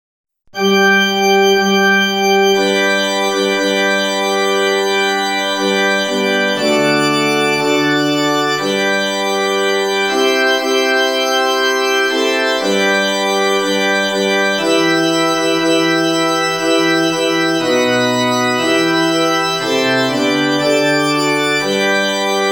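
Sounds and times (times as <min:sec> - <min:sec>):
church organ in G major: 0:00.6 - 0:22.5.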